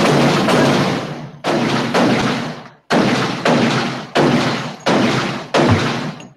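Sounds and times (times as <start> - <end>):
loud gunshot blasts with tails: 0.0 - 6.3.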